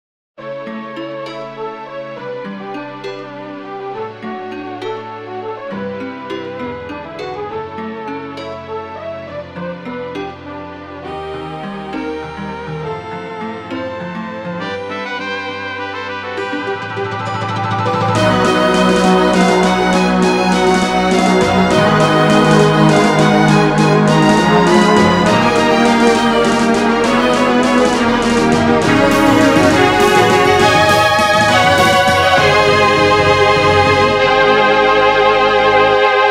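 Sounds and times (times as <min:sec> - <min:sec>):
midi music ending: 0:17.0 - 0:36.2.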